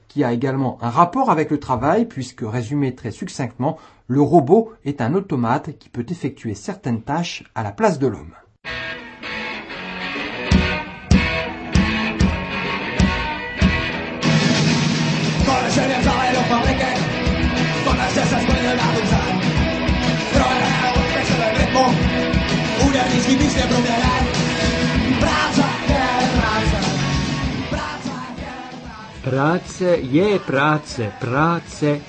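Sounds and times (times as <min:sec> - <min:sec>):
speech: 0:00.1 - 0:08.8, 0:29.2 - 0:32.0
Czech punk rock song with distorted guitars and pounding drums: 0:08.6 - 0:32.0
shouted chorus: 0:15.4 - 0:29.3.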